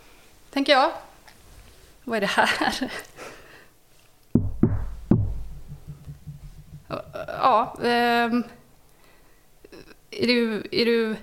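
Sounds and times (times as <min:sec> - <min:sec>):
speech: 0:00.6 - 0:01.1, 0:02.1 - 0:03.1, 0:06.9 - 0:08.6, 0:10.2 - 0:11.2
faint thuds: 0:04.4 - 0:07.9
knocking: 0:04.4 - 0:07.9.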